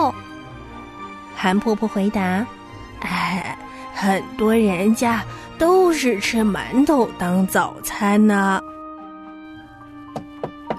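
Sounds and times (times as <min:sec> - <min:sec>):
speech: 0:01.4 - 0:08.7
firm knocks on a back door: 0:10.1 - 0:10.7.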